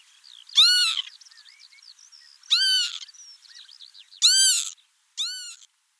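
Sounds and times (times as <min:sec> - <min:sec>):
other small birds twittering softly: 0:00.0 - 0:05.7
Northern Lapwing calling with wheezy arched notes: 0:00.6 - 0:01.1, 0:02.5 - 0:03.1, 0:04.2 - 0:05.7.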